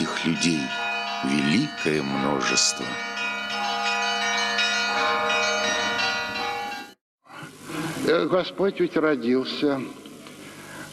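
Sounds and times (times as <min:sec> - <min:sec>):
church bells ringing: 0:00.0 - 0:07.0
speech: 0:00.3 - 0:03.2, 0:08.0 - 0:10.0.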